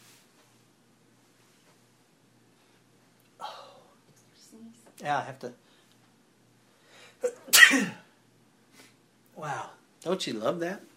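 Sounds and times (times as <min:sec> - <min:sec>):
speech: 0:04.9 - 0:05.7, 0:07.2 - 0:08.0, 0:09.4 - 0:10.9
person sneezing: 0:07.2 - 0:08.1.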